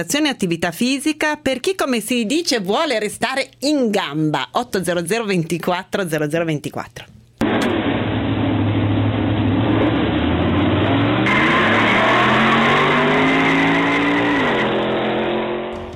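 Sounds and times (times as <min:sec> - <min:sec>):
speech: 0:00.0 - 0:07.7
racing car engines revving: 0:08.5 - 0:15.9.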